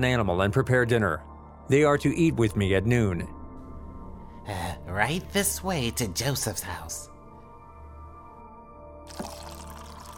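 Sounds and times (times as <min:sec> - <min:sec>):
speech: 0:00.0 - 0:03.4, 0:04.5 - 0:07.1
water pouring into a basin for foot washing: 0:09.1 - 0:10.1.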